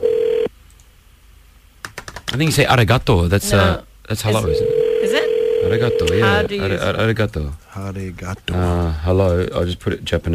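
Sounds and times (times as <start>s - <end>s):
quiet phone line hiss: 0.0s - 0.5s, 4.3s - 6.6s
telephone ringing tone on an international call to a Japanese number: 0.0s - 0.5s, 4.3s - 6.5s
speech: 2.3s - 10.3s.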